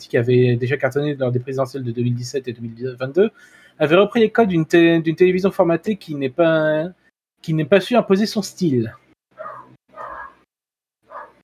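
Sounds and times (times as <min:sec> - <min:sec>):
speech: 0:00.0 - 0:09.6
neighbours' dog barking in the background: 0:09.4 - 0:10.4, 0:11.1 - 0:11.4.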